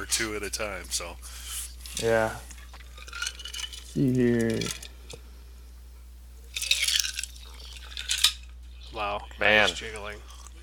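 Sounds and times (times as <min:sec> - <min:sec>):
speech: 0:00.1 - 0:02.5, 0:03.9 - 0:04.8, 0:08.9 - 0:10.3
ice clinking against the inside of a drinking glass: 0:06.5 - 0:08.4.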